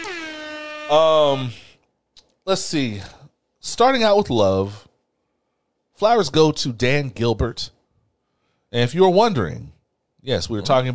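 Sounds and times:
air horn blasts: 0:00.0 - 0:01.5
speech: 0:00.9 - 0:01.6, 0:02.4 - 0:04.9, 0:06.0 - 0:07.8, 0:08.7 - 0:10.9.

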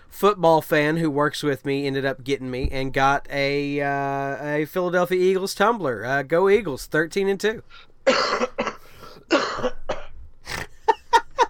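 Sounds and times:
speech: 0:00.1 - 0:08.7
person coughing harshly: 0:08.1 - 0:10.8
wheezy breath: 0:08.8 - 0:09.3.

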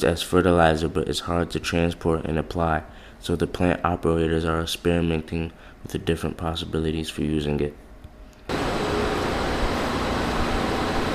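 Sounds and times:
speech: 0:00.0 - 0:07.8
faint hum of sludge paddle dryer: 0:00.0 - 0:11.1
sludge paddle dryer running with a broadband roar: 0:08.5 - 0:11.1.

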